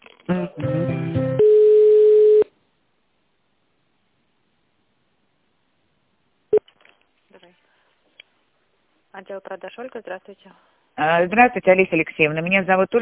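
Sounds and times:
telephone line tones as a call is transferred: 1.4 - 2.5
speech: 9.3 - 13.0.

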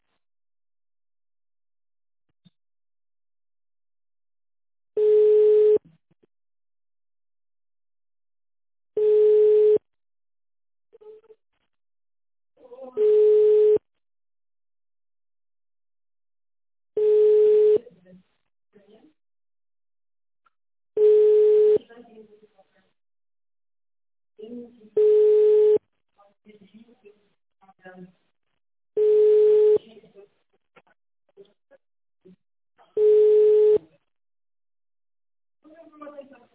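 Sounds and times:
telephone line tone while caller on hold: 5.0 - 5.8, 9.0 - 9.8, 13.0 - 13.8, 17.0 - 17.8, 21.0 - 21.8, 25.0 - 25.8, 29.0 - 29.8, 33.0 - 33.8.

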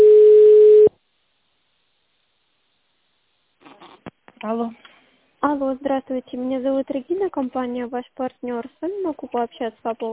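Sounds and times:
telephone line beep while a call is being transferred: 0.0 - 0.9
speech: 4.4 - 10.1.

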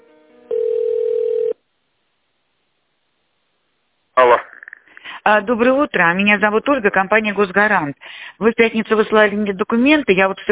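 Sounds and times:
telephone tone while a call is being transferred: 0.5 - 1.6
speech: 5.3 - 10.4.

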